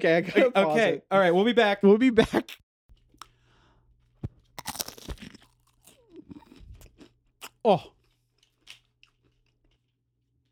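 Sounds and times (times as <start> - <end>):
speech: 0.0 - 2.6, 7.6 - 8.0
crunchy bites and chewing of caviar: 4.2 - 10.4.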